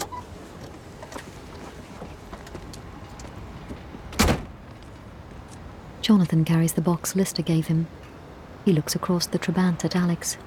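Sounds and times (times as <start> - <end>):
rustling and shuffling inside a parked car: 0.2 - 5.7
solid car door thud: 4.2 - 4.6
speech: 6.1 - 8.1, 8.7 - 10.4.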